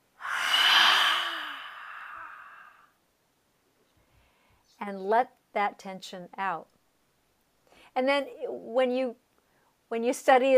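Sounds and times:
deep breath in through the nose let out as a long sigh: 0.2 - 3.0
speech: 4.8 - 6.8, 8.0 - 9.2, 9.9 - 10.5.

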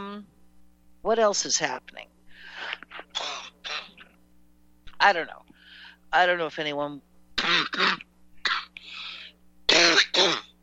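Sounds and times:
speech: 1.1 - 2.1, 5.0 - 5.4, 6.1 - 8.1
person in a coughing fit with harsh, hacking coughs: 2.7 - 4.0, 7.4 - 8.8, 9.7 - 10.5
raspy breath: 5.6 - 6.0, 8.8 - 9.4.

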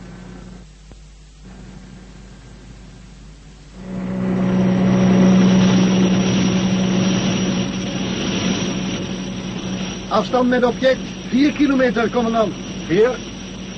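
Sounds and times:
spacecraft engine rumbling: 3.7 - 13.7
speech: 10.2 - 13.3.

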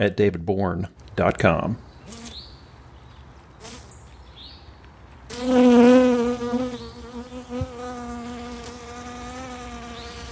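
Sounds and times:
speech: 0.0 - 1.9
honey bee wing buzz gathering nectar in a southern magnolia bloom: 2.1 - 2.4, 3.6 - 4.0, 5.2 - 10.2.

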